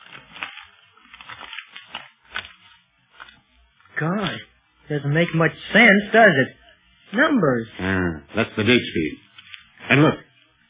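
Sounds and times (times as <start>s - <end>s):
paper from the back of a brush being unfolded: 0.0s - 3.4s, 9.2s - 9.8s
speech: 4.0s - 9.2s, 9.9s - 10.2s.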